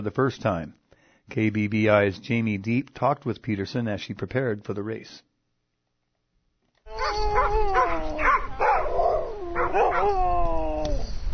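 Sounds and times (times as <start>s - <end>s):
speech: 0.0s - 5.3s, 9.7s - 10.4s
sled dogs howling and barking excitedly outside a house on the southern Kenai Peninsula: 6.9s - 11.2s
low rumble of wind in a blustering snowstorm: 6.9s - 11.3s.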